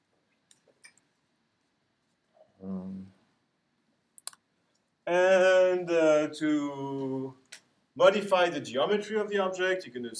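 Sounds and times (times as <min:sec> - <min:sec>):
brief low hum from a voice: 0:02.6 - 0:03.2
mouse clicks selecting objects: 0:04.2 - 0:04.4
speech: 0:05.1 - 0:07.4, 0:08.0 - 0:10.1.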